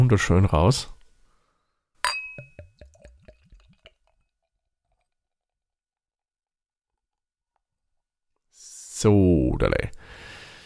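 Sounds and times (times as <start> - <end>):
speech: 0.0 - 1.0, 9.0 - 10.0
beer bottle opening with a pop and clink: 2.0 - 2.8
beer glugging as it pours: 2.1 - 5.2.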